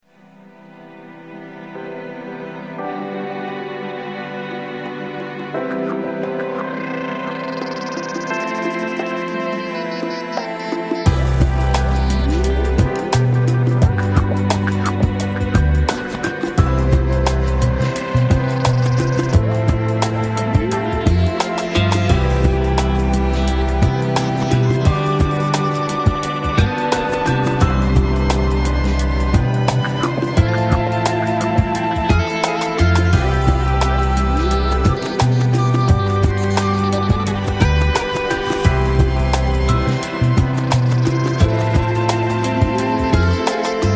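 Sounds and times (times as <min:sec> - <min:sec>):
ambient beats: 0:04.9 - 0:43.9.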